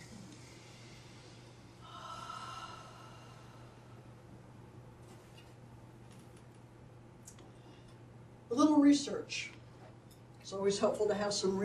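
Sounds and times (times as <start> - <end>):
group taking a deep breath together in a holistic nursing session: 0.4 - 4.0
speech: 8.8 - 9.6, 10.5 - 11.6.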